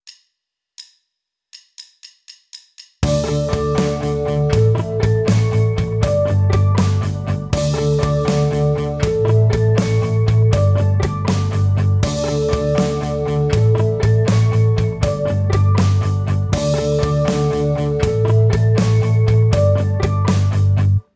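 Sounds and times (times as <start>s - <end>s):
tapped guitar harmonics: 3.0s - 21.0s.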